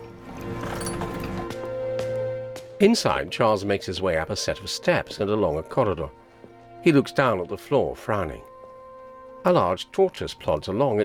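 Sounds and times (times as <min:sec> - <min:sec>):
riders' horse hooves clopping and shuffling at stables: 0:00.0 - 0:02.2
speech: 0:02.8 - 0:06.2, 0:06.8 - 0:08.5, 0:09.4 - 0:11.0.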